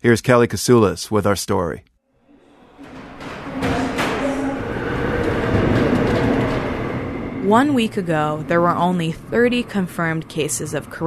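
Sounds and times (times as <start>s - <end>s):
speech: 0.0s - 1.9s, 7.4s - 11.0s
subway train rumbling in motion in Seoul: 2.1s - 11.0s
metallic rattling of a subway car: 2.3s - 11.0s.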